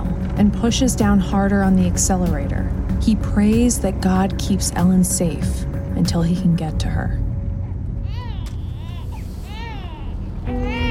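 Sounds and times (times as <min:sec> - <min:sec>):
steady low rumble: 0:00.0 - 0:10.8
speech: 0:00.4 - 0:07.2
newborn baby fussing and crying: 0:08.0 - 0:10.8.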